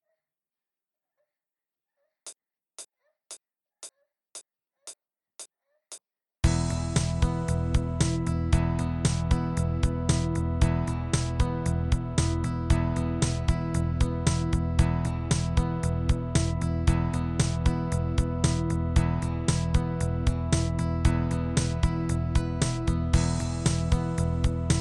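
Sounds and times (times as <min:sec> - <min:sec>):
blues rock and hard rock rhythm part: 0:06.4 - 0:24.7.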